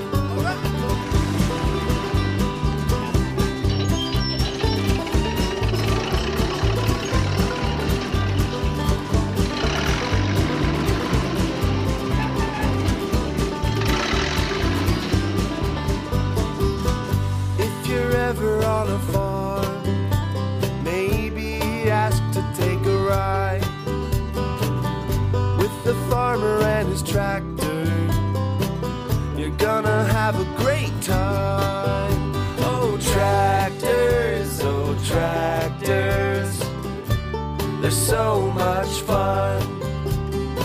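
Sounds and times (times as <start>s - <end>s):
heavy tractor engine rumbling: 0.0s - 40.6s.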